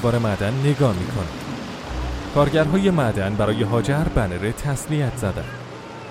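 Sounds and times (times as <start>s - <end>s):
speech: 0.0s - 1.4s, 2.3s - 5.6s
car engine running with a low rumble and droning hum at a mine: 1.6s - 4.3s.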